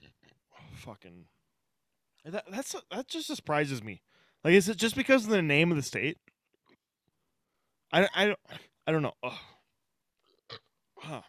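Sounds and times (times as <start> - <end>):
speech: 0.8 - 1.4, 2.2 - 6.2, 7.9 - 9.5, 10.5 - 11.2
loud beer belch: 10.5 - 11.2.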